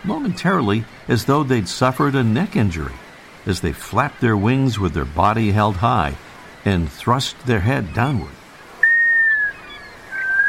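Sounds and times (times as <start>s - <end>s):
speech: 0.0s - 8.4s
black scoter Melanitta americana plaintive whistling call: 8.8s - 10.4s.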